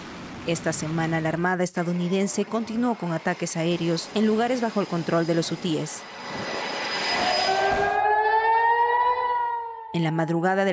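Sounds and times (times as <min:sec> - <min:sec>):
broad noisy rush: 0:00.0 - 0:07.9
speech: 0:00.5 - 0:06.5, 0:10.0 - 0:10.7
air raid warning siren wailing: 0:00.7 - 0:10.2.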